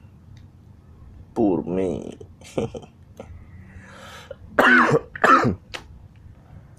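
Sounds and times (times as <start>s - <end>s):
speech: 1.4s - 3.3s, 4.6s - 5.6s
person coughing harshly: 4.6s - 5.6s.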